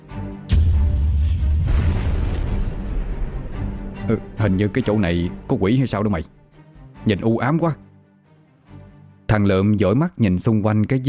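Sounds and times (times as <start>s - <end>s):
explosions booming in a cave during a fight: 0.5s - 4.1s
speech: 4.1s - 6.4s, 7.0s - 7.8s, 9.3s - 11.0s.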